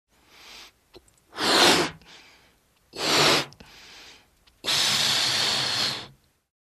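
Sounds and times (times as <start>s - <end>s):
balloon being inflated: 1.3s - 2.0s, 3.0s - 3.6s, 4.6s - 6.2s.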